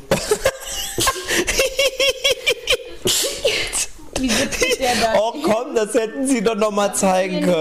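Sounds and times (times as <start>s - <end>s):
people laughing: 0.0s - 5.7s
sharp sneeze: 3.0s - 3.9s
lively voices chattering: 3.0s - 7.5s
speech: 4.9s - 7.5s.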